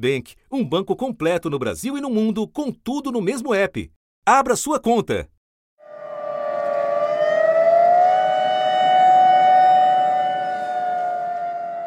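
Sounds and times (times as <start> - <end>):
speech: 0.0 - 5.4
loud civil defense warning siren wailing: 5.8 - 11.8.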